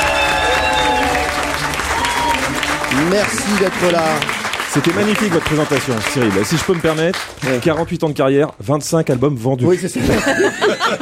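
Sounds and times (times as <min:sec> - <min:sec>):
studio audience applause: 0:00.0 - 0:08.0
speech: 0:03.0 - 0:10.9
laughter: 0:09.9 - 0:10.9.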